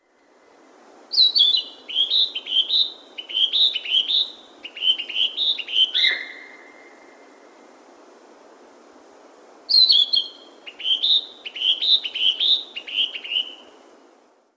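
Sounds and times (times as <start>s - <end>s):
kibitaki singing: 1.1s - 7.2s, 9.7s - 13.7s.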